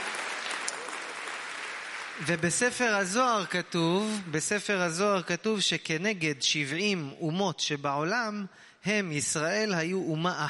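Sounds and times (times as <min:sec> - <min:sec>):
audience of about a thousand people applauding at an international conference: 0:00.0 - 0:02.7
speech: 0:02.2 - 0:10.4.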